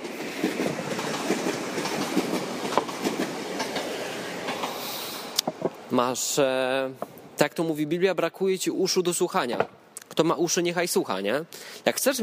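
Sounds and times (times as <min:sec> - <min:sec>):
train passing on rails: 0:00.0 - 0:09.7
speech: 0:05.9 - 0:12.2.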